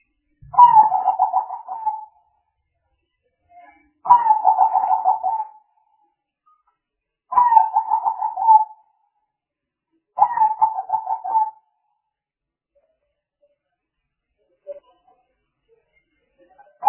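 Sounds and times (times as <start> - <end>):
spotted dove cooing: 0.5 - 2.1, 4.1 - 5.6, 7.4 - 8.8, 10.2 - 11.6.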